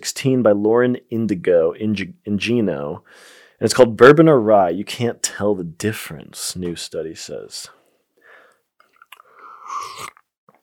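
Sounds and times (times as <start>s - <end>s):
speech: 0.1s - 7.8s
person sipping a drink: 8.5s - 10.6s
wet mouth clicks: 8.8s - 10.6s.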